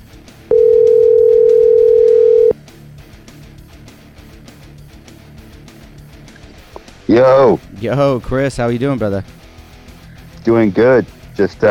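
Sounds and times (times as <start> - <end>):
telephone ringback tone while calling someone: 0.5 - 2.6
speech: 7.1 - 9.4, 10.4 - 11.6.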